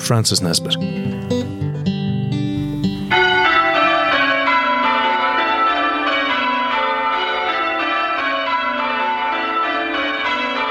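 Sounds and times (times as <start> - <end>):
speech: 0.1 - 1.4
church bells ringing in a dense overlapping peal: 2.6 - 10.7.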